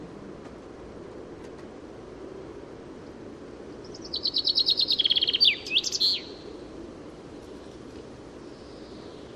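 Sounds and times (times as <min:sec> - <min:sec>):
common chaffinch Fringilla coelebs song: 0:02.2 - 0:07.3, 0:08.2 - 0:09.3.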